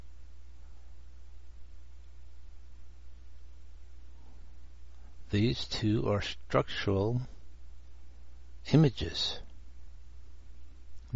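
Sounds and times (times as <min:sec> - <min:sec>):
computer fan humming: 0:00.0 - 0:11.1
speech: 0:05.3 - 0:07.4, 0:08.6 - 0:09.4.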